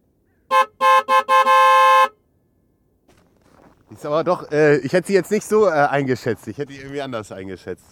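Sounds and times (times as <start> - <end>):
car horn honking: 0.5 - 2.2
speech: 3.9 - 7.9.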